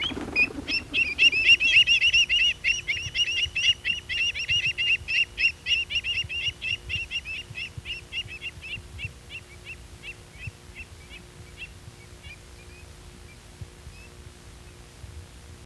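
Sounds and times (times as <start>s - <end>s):
Andean avocet piping calls in Argentina: 0.0s - 14.9s.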